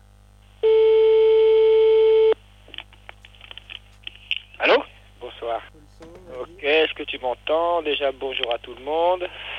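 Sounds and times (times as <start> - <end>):
telephone call ringing tone: 0.6 - 2.3
speech: 7.5 - 9.5.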